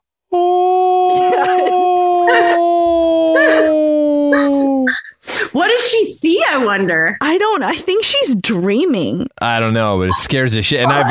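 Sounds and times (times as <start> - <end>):
person imitating a dog howling in its sleep: 0.3 - 5.0
speech: 5.8 - 11.1.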